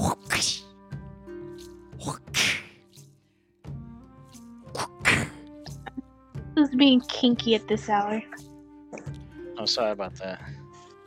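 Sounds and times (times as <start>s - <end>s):
whip cracks: 2.3s - 2.8s
speech: 6.8s - 8.4s, 9.6s - 10.6s.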